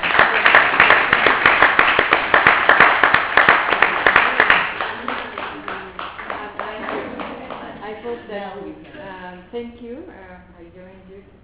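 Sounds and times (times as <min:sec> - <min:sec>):
sharper individual hand claps: 0:00.0 - 0:07.8
workshop audience applauding: 0:00.0 - 0:08.2
speech: 0:09.5 - 0:11.4.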